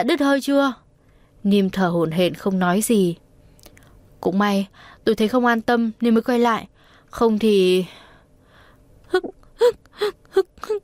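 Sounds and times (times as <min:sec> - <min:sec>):
speech: 0:00.0 - 0:00.8, 0:01.4 - 0:03.2, 0:04.2 - 0:08.0, 0:09.1 - 0:10.8
person crying: 0:09.1 - 0:10.8.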